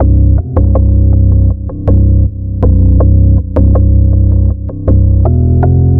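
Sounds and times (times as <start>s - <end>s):
screwed bass: 0.0s - 5.9s.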